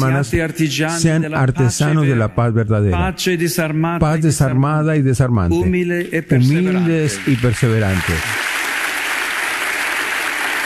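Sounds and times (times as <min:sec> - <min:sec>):
speech: 0:00.0 - 0:08.6
audience applause during an ovation: 0:06.8 - 0:10.6.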